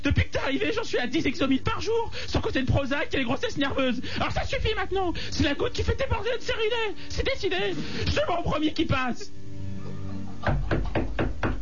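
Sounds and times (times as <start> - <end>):
speech: 0.0 - 9.4, 10.4 - 11.0
low noise: 0.0 - 11.6
knocking on a door: 10.4 - 11.6.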